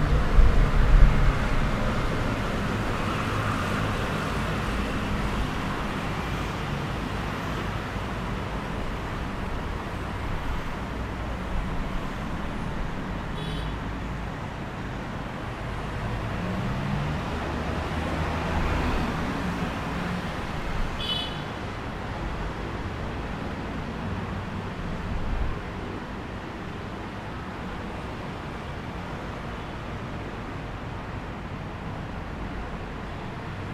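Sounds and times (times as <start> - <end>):
traffic on a flyover in Taipei roaring with tyres and engines: 0.0 - 33.7.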